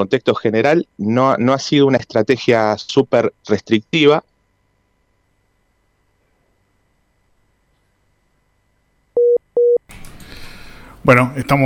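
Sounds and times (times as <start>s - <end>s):
speech: 0.0s - 4.3s, 11.1s - 11.6s
telephone beeps after a dropped call: 9.2s - 9.8s.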